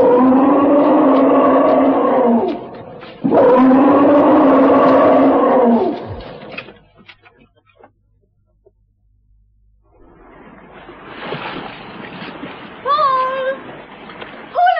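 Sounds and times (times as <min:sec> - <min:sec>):
charging tusker elephant bellowing roars: 0:00.0 - 0:06.8
rough rumbling noise: 0:00.0 - 0:14.6.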